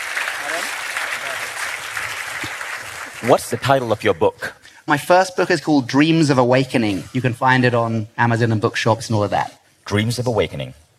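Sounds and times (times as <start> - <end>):
audience applause: 0.0 - 4.1
speech: 3.2 - 10.8.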